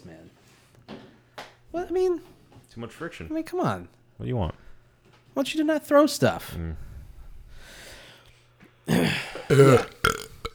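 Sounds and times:
speech: 0:01.8 - 0:04.6, 0:05.4 - 0:06.9, 0:08.9 - 0:09.9
loud drawn-out belch: 0:08.9 - 0:10.5.

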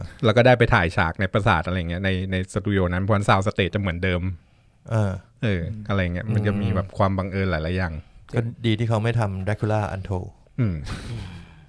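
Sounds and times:
speech: 0:00.2 - 0:11.4
low throaty hum or growl from a voice trailing into a breathy exhale: 0:06.2 - 0:07.0.

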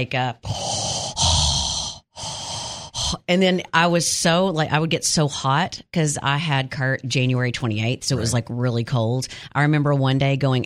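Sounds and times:
speech: 0:00.0 - 0:00.7, 0:03.2 - 0:10.6
voice imitating heavy labored breathing: 0:00.4 - 0:03.3.

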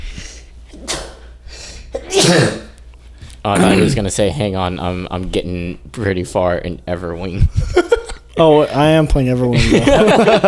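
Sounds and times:
sharp breathy inhales: 0:00.0 - 0:01.9
person sneezing: 0:00.7 - 0:02.8, 0:03.5 - 0:04.0
speech: 0:02.2 - 0:02.6, 0:03.4 - 0:07.8, 0:08.4 - 0:10.4
laughter: 0:09.5 - 0:10.4.

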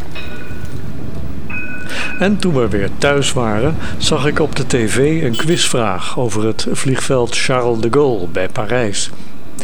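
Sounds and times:
electronic chime tones from a passing city tram in Bordeaux France: 0:00.0 - 0:04.6, 0:05.3 - 0:06.2
steady low rail rumble: 0:00.0 - 0:09.6
speech: 0:02.2 - 0:09.6.

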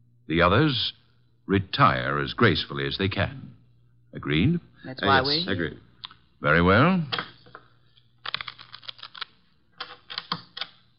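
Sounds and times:
speech: 0:00.3 - 0:05.8, 0:06.4 - 0:07.3
deck of playing cards being shuffled for a hand of poker: 0:08.2 - 0:10.8.

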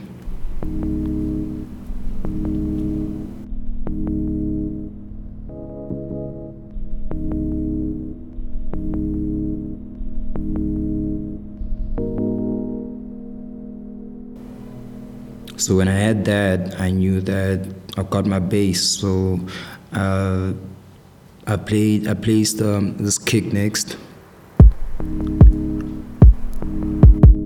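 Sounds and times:
one-shot synth sample played as a melodic sequence in G-sharp minor: 0:00.0 - 0:16.2, 0:24.6 - 0:27.4
speech: 0:15.6 - 0:20.7, 0:21.5 - 0:24.1.

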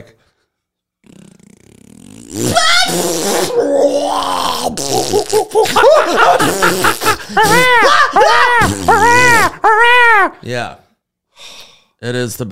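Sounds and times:
speech: 0:00.0 - 0:00.3, 0:02.3 - 0:10.8, 0:12.0 - 0:12.5
long drawn-out fart: 0:01.0 - 0:03.7, 0:04.5 - 0:05.5, 0:06.3 - 0:07.7, 0:08.5 - 0:09.5
snickering laughter: 0:04.9 - 0:10.3.

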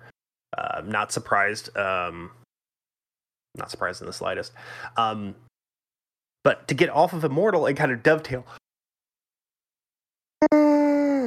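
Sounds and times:
speech: 0:00.8 - 0:02.4, 0:03.6 - 0:05.5, 0:06.4 - 0:08.6
person yawning: 0:10.4 - 0:11.2.

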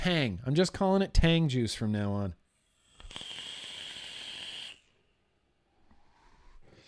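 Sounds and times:
speech: 0:00.0 - 0:02.4
vape coils in a stacked series build crackling during a hit: 0:02.9 - 0:04.9.

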